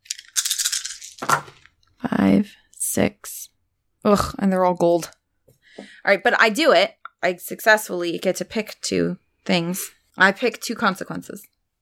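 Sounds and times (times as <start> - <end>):
dice rattling in a hand or cup: 0.0 - 1.7
speech: 2.2 - 3.2, 4.0 - 5.2, 6.0 - 11.5.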